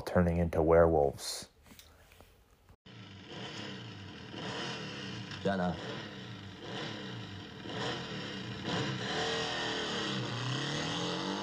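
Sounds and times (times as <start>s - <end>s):
speech: 0.1s - 1.5s, 5.4s - 6.1s
motorcycle engine revving: 2.8s - 11.4s.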